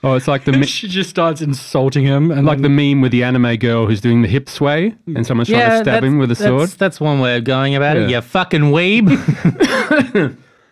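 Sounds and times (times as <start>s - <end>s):
laughter: 0.0s - 0.9s, 8.9s - 10.4s
speech: 0.0s - 10.4s
person coughing roughly: 9.5s - 10.4s.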